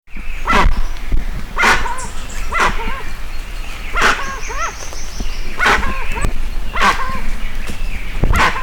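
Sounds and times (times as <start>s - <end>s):
steady low rumble: 0.1s - 8.6s
dusky-legged guan Penelope obscura calling in Itatiaia National Park Brazil: 0.4s - 0.8s, 1.5s - 7.4s, 8.3s - 8.6s.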